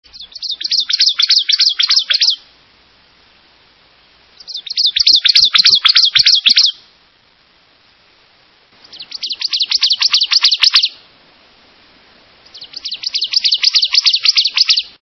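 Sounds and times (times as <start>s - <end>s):
ovenbird: 0.1s - 2.6s, 4.3s - 7.0s, 8.8s - 11.1s, 12.4s - 15.0s.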